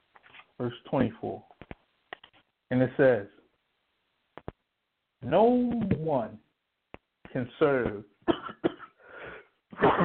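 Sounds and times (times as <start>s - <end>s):
speech: 0.6s - 1.5s, 2.7s - 3.4s, 5.2s - 6.4s, 7.3s - 8.5s
person coughing: 8.3s - 10.0s.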